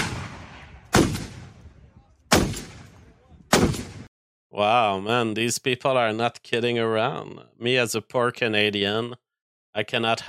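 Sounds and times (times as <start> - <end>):
high-powered rifle firing: 0.0 - 4.1
speech: 4.6 - 9.2, 9.8 - 10.2.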